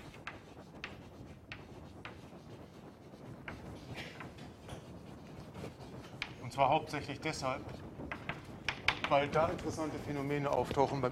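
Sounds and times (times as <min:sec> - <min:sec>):
writing on a board during a university physics lecture: 0:00.0 - 0:09.6
speech: 0:06.6 - 0:07.8, 0:09.1 - 0:11.1.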